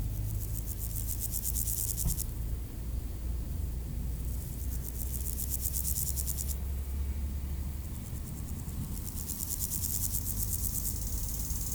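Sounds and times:
low road noise in Aveize, France: 0:00.0 - 0:11.7
grasshopper buzzing in high-pitched bursts: 0:00.2 - 0:02.2, 0:04.3 - 0:06.6, 0:08.9 - 0:11.7.

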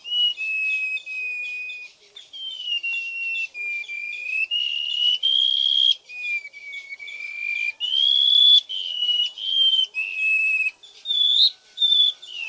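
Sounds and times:
White-rumped shama song of sustained clear whistles: 0:00.0 - 0:12.4.

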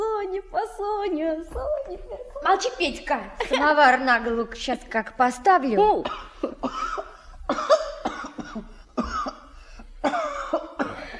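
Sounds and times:
speech: 0:00.4 - 0:07.8
boy coughing harshly: 0:06.0 - 0:11.1.

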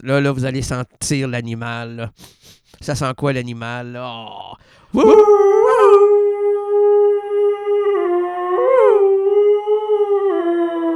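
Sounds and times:
speech: 0:00.0 - 0:06.4
person imitating a werewolf howl: 0:04.2 - 0:10.9.

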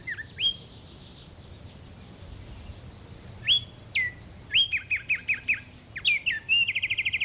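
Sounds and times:
Black-striped sparrow Arremonops conirostris conirostris whistling and trilling: 0:00.0 - 0:01.8, 0:02.5 - 0:07.2.

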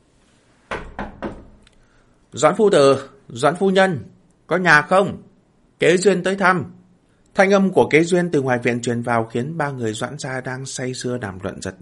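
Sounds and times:
soft knocks on a courtyard door: 0:00.7 - 0:01.6
speech: 0:02.3 - 0:06.8, 0:07.4 - 0:11.8.

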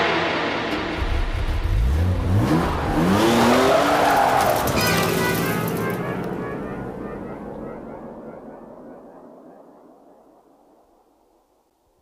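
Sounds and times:
car engine revving while speeding off in an escape: 0:00.1 - 0:09.2
car tires skidding and squealing: 0:01.9 - 0:07.4.

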